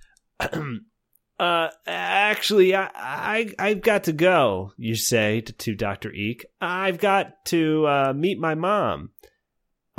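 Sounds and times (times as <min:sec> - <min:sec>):
raspy gravelly throat clearing: 0:00.4 - 0:00.9
speech: 0:00.4 - 0:09.2.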